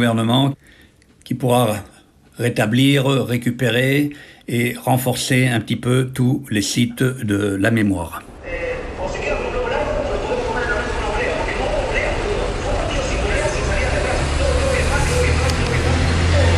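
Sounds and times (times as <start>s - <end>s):
speech: 0.0s - 8.7s
idling bus engines at the main bus terminal in Buenos Aires: 8.5s - 16.5s.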